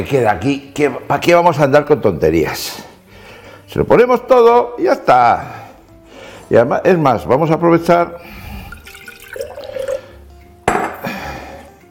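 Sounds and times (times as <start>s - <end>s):
speech: 0.0s - 2.9s, 3.7s - 5.6s, 6.5s - 8.4s
water pouring into a glass tomato jar to rinse it while cooking: 8.4s - 10.2s
water splashing: 8.5s - 10.1s
glass jar clinking: 8.7s - 10.0s, 10.6s - 11.1s.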